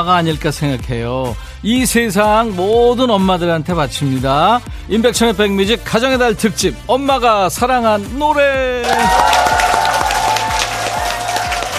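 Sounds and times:
speech: 0:00.0 - 0:09.5
live audience applause and cheering: 0:08.8 - 0:11.7.

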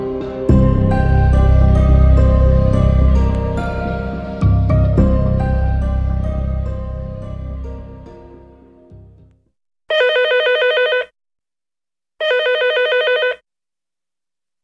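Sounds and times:
low musical swell: 0:00.0 - 0:09.1
old-style telephone bell ringing: 0:09.9 - 0:11.1, 0:12.2 - 0:13.4.

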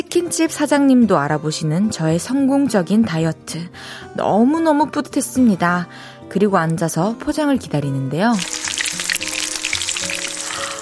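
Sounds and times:
speech: 0:00.1 - 0:08.7
chicken sizzling in hot oil as it is fried: 0:08.3 - 0:10.7.

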